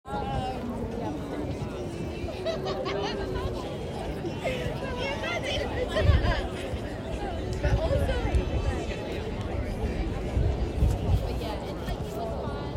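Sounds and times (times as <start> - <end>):
chatter in a park: 0.1 - 12.7
laughter in a park: 2.2 - 4.9, 5.6 - 6.8
subtle wind blowing: 4.6 - 12.4.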